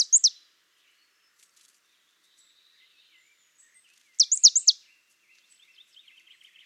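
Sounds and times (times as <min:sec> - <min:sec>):
Poecile palustris marsh tit calling: 0:00.0 - 0:00.4, 0:04.2 - 0:04.8.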